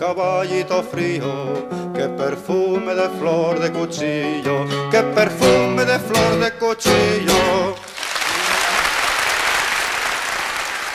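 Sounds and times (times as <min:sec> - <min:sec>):
speech: 0:00.0 - 0:07.8
applause from a large audience after a song sung with guitar: 0:07.8 - 0:10.9.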